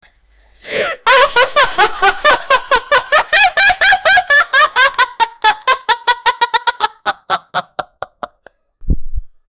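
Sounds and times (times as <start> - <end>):
person giggling: 1.0 - 8.5
person laughing: 1.0 - 8.5.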